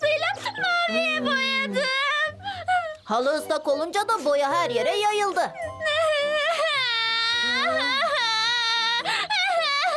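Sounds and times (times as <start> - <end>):
child crying in a high wavering wail: 0.1 - 3.0, 5.5 - 9.9
speech: 3.1 - 5.6.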